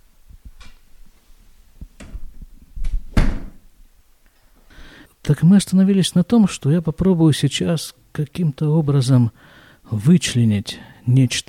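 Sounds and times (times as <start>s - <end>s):
door rattling as it swings: 2.0s - 3.6s
speech: 5.3s - 11.4s.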